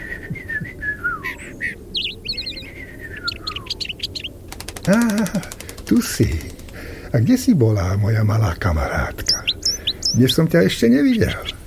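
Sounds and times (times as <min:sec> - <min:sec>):
small robin singing in a garden tree: 0:00.0 - 0:11.6
steady low rumble: 0:00.0 - 0:11.6
speech: 0:04.8 - 0:11.6.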